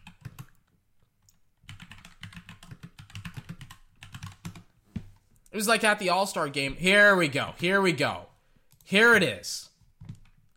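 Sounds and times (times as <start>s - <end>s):
typing on a computer keyboard: 0.0s - 4.7s, 10.0s - 10.5s
speech: 5.5s - 8.3s, 8.9s - 9.7s.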